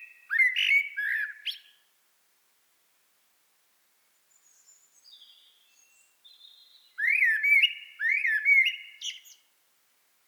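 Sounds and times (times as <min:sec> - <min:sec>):
Common blackbird Turdus merula warbled song phrases: 0:00.0 - 0:01.8, 0:04.2 - 0:09.5.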